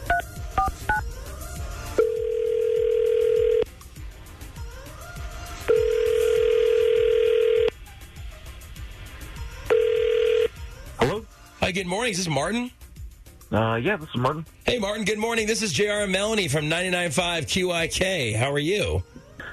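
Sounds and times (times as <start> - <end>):
touch-tone keypad beeps dialing a number: 0.1 - 1.0
outgoing call's ringback tone: 2.0 - 3.7, 5.7 - 7.7, 9.7 - 10.5
speech: 11.8 - 12.8, 13.5 - 19.1.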